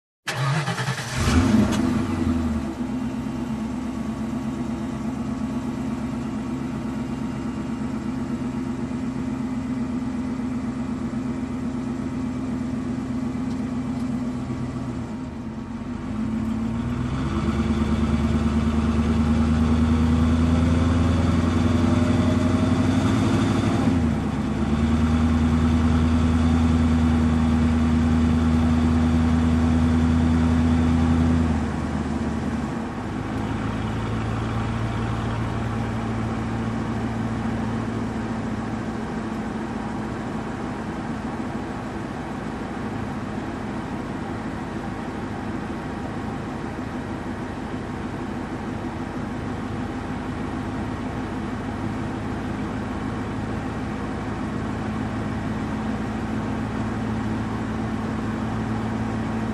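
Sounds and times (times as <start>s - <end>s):
truck engine ignition: 0.3s - 9.1s, 10.4s - 59.5s.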